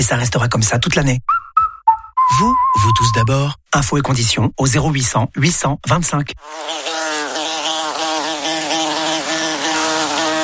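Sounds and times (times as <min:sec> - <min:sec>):
speech: 0:00.0 - 0:01.4, 0:02.3 - 0:07.1
wasp buzzing: 0:06.4 - 0:10.4.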